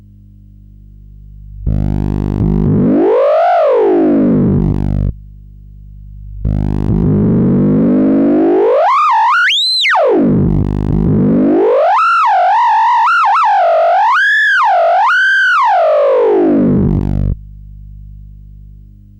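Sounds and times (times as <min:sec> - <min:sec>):
theremin pitch test tone: 0:01.7 - 0:05.1, 0:06.5 - 0:17.4.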